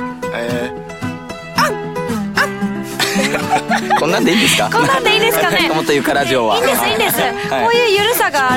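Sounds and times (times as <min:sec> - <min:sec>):
person imitating a dog barking: 0:01.6 - 0:02.6
laughter: 0:02.8 - 0:07.5
speech: 0:03.8 - 0:08.5.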